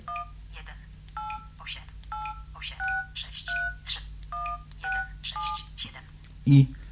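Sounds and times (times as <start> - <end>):
dual-pitch phone keypad DTMF tones dialing a number: 0.1 - 0.3, 1.2 - 1.5, 2.1 - 5.7
speech: 6.5 - 6.8.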